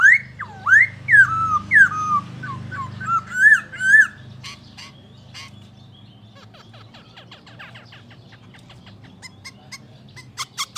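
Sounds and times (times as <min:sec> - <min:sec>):
Black-throated laughingthrush Pterorhinus chinensis calling with slurred whistles: 0:00.0 - 0:10.7.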